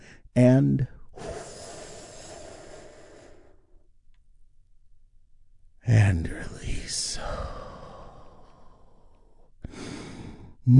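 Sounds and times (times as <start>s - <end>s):
speech: 0.4s - 1.0s
slow deep breath in during a guided relaxation exercise: 1.1s - 3.9s, 7.2s - 10.6s.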